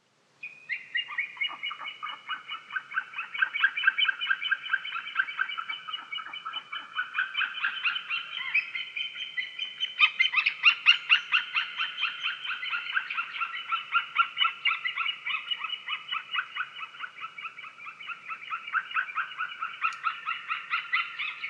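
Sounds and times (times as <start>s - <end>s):
white-tailed eagle Haliaeetus albicilla calling on Zirgu island, Lake Liepaja: 0.4s - 21.4s.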